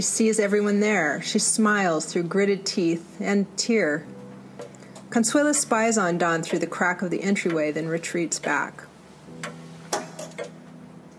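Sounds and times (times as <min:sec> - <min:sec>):
speech: 0:00.0 - 0:04.2, 0:05.1 - 0:08.9
grandfather clock ticking: 0:04.6 - 0:10.5.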